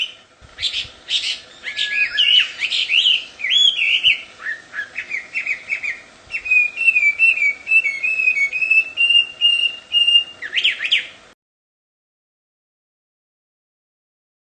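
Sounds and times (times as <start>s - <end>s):
Chinese hwamei singing whistled phrases in its natural habitat: 0.0s - 11.4s
faint steady hum: 0.0s - 11.4s.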